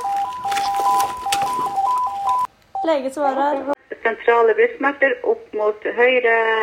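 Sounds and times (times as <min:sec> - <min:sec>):
emergency call alarm beeping in alternating high and low tones: 0:00.0 - 0:03.0
speech: 0:02.9 - 0:06.6.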